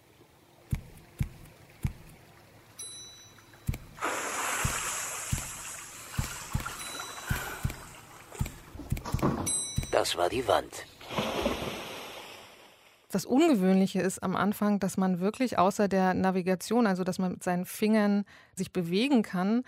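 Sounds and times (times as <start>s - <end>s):
rushing splashing water: 0.0s - 2.7s, 3.6s - 10.0s, 11.0s - 12.9s
dull knocks and splashes: 0.6s - 2.3s, 3.6s - 10.0s, 11.0s - 12.5s
speech: 10.0s - 10.9s, 13.1s - 19.6s.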